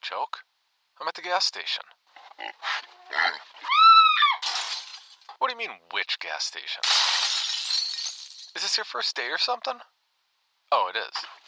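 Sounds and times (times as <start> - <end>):
speech: 0.0 - 4.0, 5.4 - 7.8, 8.6 - 9.9, 10.7 - 11.3
pig squealing in a gas station store: 2.4 - 4.4.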